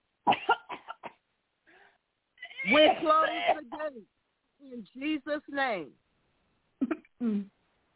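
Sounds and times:
person coughing harshly during a deliverance prayer: 0:00.3 - 0:01.2, 0:02.6 - 0:03.9
speech: 0:02.7 - 0:06.0, 0:06.8 - 0:07.6.

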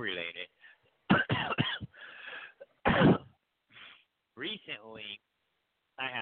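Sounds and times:
person clearing throat: 0:01.1 - 0:02.0, 0:02.6 - 0:03.4.

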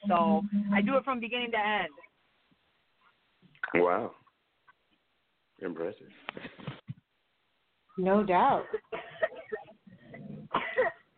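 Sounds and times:
speech: 0:00.1 - 0:02.1, 0:03.7 - 0:04.2, 0:05.6 - 0:06.7, 0:08.0 - 0:09.6
person coughing: 0:08.7 - 0:11.1.

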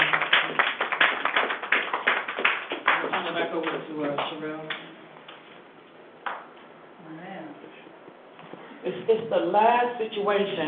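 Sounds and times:
church audience applause: 0:00.0 - 0:03.4
speech: 0:03.5 - 0:04.9, 0:09.1 - 0:10.6.

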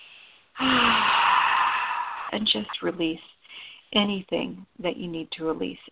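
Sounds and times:
deep breath taken during a guided relaxation exercise: 0:00.0 - 0:02.4
speech: 0:02.4 - 0:05.9.

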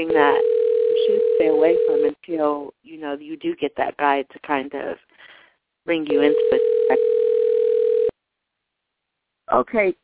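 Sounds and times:
telephone ringing with a single steady electronic tone: 0:00.0 - 0:02.2, 0:06.1 - 0:08.1
speech: 0:00.0 - 0:07.2, 0:09.5 - 0:10.0.

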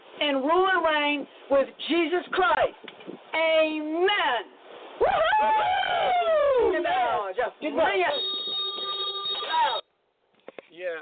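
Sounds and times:
speech: 0:00.2 - 0:08.6, 0:10.8 - 0:11.0
electronic ringing tone over a telephone line: 0:08.1 - 0:09.8.

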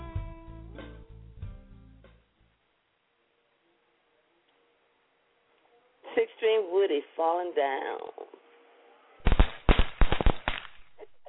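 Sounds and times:
speech: 0:06.2 - 0:08.4
firecrackers popping: 0:09.2 - 0:11.2.

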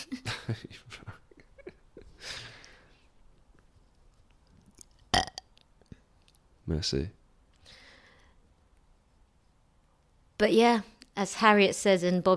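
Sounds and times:
croaky burp-like bursts from someone straining to make a fart noise: 0:05.1 - 0:05.4
speech: 0:06.7 - 0:07.2, 0:10.4 - 0:12.3.

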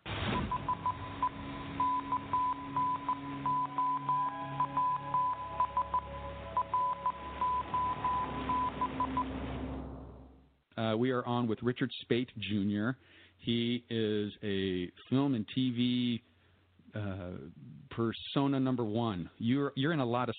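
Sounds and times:
faint radio hiss: 0:00.0 - 0:02.4, 0:10.7 - 0:20.3
morse code beeping: 0:00.4 - 0:09.4
speech: 0:10.8 - 0:16.3, 0:16.9 - 0:20.3.

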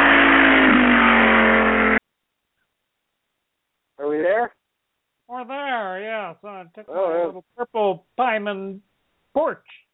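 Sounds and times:
car engine revving: 0:00.0 - 0:02.0
speech: 0:05.3 - 0:09.8.

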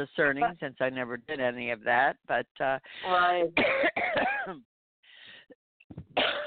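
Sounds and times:
speech: 0:00.0 - 0:04.7
person clearing throat: 0:03.6 - 0:04.6, 0:06.2 - 0:06.4
person coughing harshly: 0:03.6 - 0:04.6, 0:06.2 - 0:06.4.

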